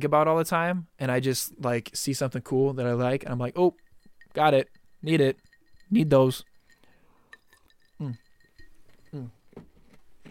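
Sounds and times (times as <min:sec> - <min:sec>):
speech: 0:00.0 - 0:03.8, 0:04.4 - 0:06.5, 0:08.0 - 0:08.2, 0:09.1 - 0:09.4
ice cube clinking against glass: 0:03.4 - 0:09.7.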